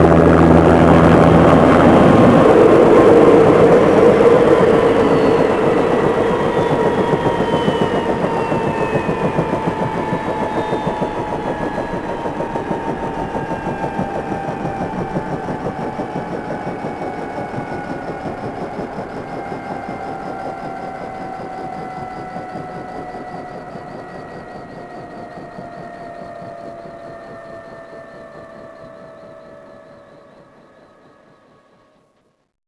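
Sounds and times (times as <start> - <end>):
helicopter landing: 0.0 - 32.1.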